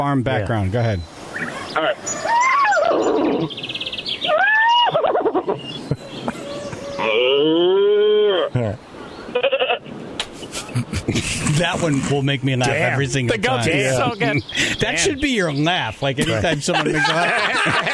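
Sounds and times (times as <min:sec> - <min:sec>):
speech: 0:00.0 - 0:01.2, 0:01.8 - 0:04.5, 0:07.0 - 0:09.5, 0:11.2 - 0:17.9
laughter: 0:04.6 - 0:07.0, 0:10.2 - 0:15.2, 0:16.1 - 0:17.9
person imitating cow mooing: 0:06.9 - 0:08.6.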